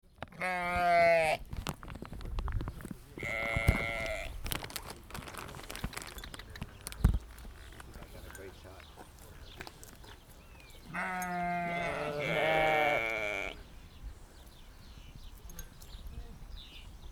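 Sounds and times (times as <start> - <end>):
sheep near Melide: 0.2 - 1.5, 3.2 - 4.8, 10.0 - 13.6.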